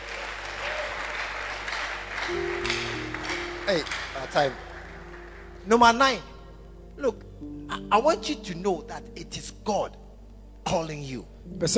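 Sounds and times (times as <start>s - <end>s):
audience applause for young people: 0.0s - 5.6s
speech: 2.3s - 2.6s, 3.7s - 4.7s, 5.6s - 6.3s, 7.0s - 10.0s, 10.6s - 11.7s.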